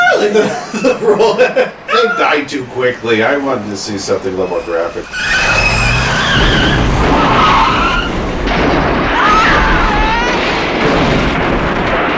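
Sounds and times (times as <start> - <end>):
laughter: 0.0 - 2.5
speech: 0.2 - 6.9
car tires screeching in a skid: 3.9 - 10.3
dense roaring crunching noise of a car crash: 4.5 - 12.1.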